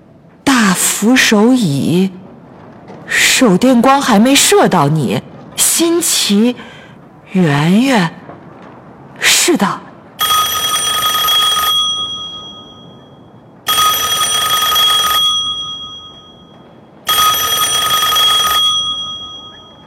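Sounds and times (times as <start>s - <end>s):
speech: 0.8s - 2.2s, 3.4s - 8.2s, 9.5s - 9.8s
old-fashioned telephone bell ringing: 10.2s - 19.8s.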